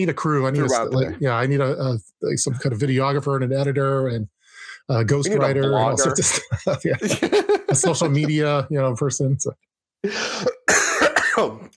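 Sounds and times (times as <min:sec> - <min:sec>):
speech: 0:00.0 - 0:10.6, 0:11.4 - 0:11.7
laughter: 0:05.3 - 0:08.6
person coughing harshly with phlegmy edge: 0:10.1 - 0:11.7.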